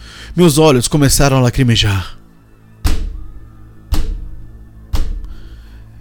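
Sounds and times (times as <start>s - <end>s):
speech: 0.4s - 2.2s
heavy booming thuds on a door from a creature trying to get in: 2.8s - 3.3s, 3.9s - 5.3s.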